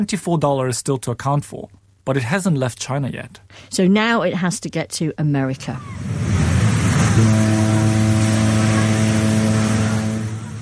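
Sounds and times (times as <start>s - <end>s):
speech: 0.0s - 6.2s
truck engine rumbling as the truck drives off: 5.7s - 10.6s.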